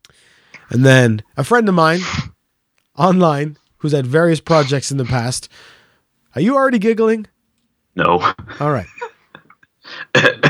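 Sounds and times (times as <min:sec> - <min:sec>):
speech: 0:00.7 - 0:02.3, 0:03.0 - 0:07.3, 0:08.0 - 0:08.9, 0:09.8 - 0:10.4
person coughing: 0:01.9 - 0:02.3, 0:04.5 - 0:05.3, 0:09.9 - 0:10.4.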